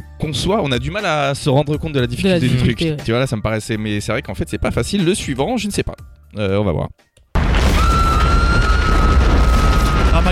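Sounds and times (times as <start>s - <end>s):
speech: 0.2s - 7.1s
big explosion low rumble: 7.4s - 10.3s.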